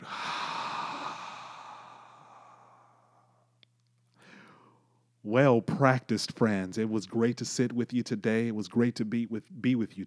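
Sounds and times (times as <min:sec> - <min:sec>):
person taking a deep breath at the close of a practice session: 0:00.0 - 0:03.5, 0:04.2 - 0:04.8
speech: 0:05.2 - 0:10.0.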